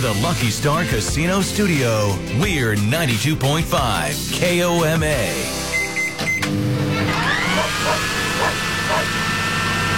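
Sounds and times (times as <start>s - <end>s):
speech: 0.0s - 5.6s, 6.5s - 6.7s
electronic beeps: 5.7s - 6.5s
household appliances humming and whirring: 6.4s - 9.9s
motor whine shifting pitch: 6.4s - 9.9s.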